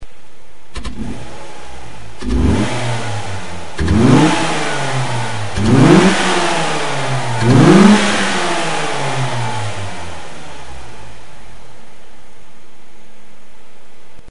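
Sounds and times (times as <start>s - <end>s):
Mazda5 intake sound: 0.8s - 11.2s.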